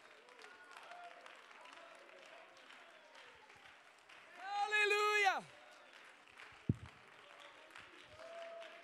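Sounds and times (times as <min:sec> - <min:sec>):
standing audience clapping and cheering: 0:00.0 - 0:08.8.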